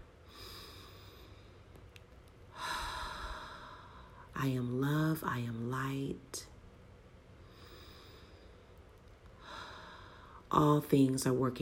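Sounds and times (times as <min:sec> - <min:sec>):
deep breathing during a guided relaxation: 0:00.2 - 0:01.7, 0:02.5 - 0:04.3, 0:07.4 - 0:10.5
speech: 0:04.4 - 0:06.5, 0:10.5 - 0:11.6.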